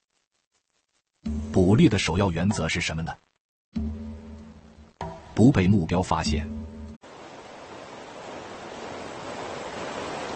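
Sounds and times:
speech: 0:01.6 - 0:03.3, 0:05.4 - 0:06.6
dense rush of water from small waterfall or fast stream: 0:07.0 - 0:10.3.

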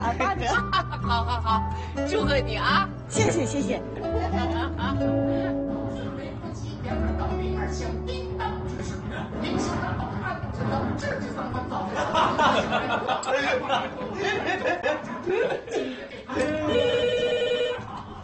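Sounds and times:
laughter: 0:00.0 - 0:01.9, 0:03.2 - 0:05.6, 0:08.8 - 0:18.2
lively chatter from several people in a busy room: 0:00.0 - 0:03.9, 0:05.4 - 0:18.1
speech: 0:01.1 - 0:05.5, 0:09.3 - 0:17.0
telephone ringing: 0:16.6 - 0:17.9.

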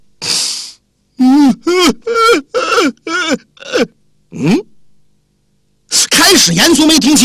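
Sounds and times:
storyteller imitating someone weeping outside a bedroom door: 0:01.2 - 0:04.7
speech: 0:03.3 - 0:04.6, 0:06.5 - 0:07.2.

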